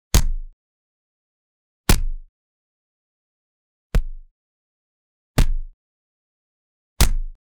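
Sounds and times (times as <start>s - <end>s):
boxing punch: 0.2s - 0.6s, 1.9s - 2.3s, 4.0s - 4.2s, 5.4s - 5.8s, 7.0s - 7.4s.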